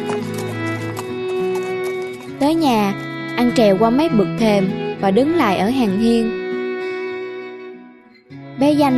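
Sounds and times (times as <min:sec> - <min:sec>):
hooves of a horse-drawn carriage clip-clopping in a trot: 0:00.0 - 0:05.0
speech: 0:02.4 - 0:06.4, 0:08.6 - 0:08.9.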